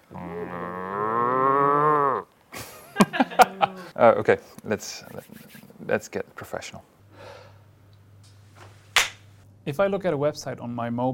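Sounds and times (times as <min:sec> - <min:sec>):
cow mooing: 0:00.0 - 0:02.3
laughter: 0:02.6 - 0:03.9
speech: 0:03.9 - 0:07.4, 0:09.6 - 0:11.1.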